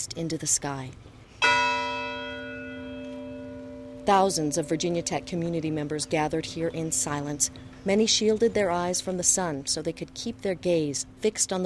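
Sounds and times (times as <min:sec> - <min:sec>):
speech: 0:00.0 - 0:01.2, 0:04.0 - 0:11.6
memorial bell rung for victims at a university remembrance gathering: 0:01.4 - 0:07.3.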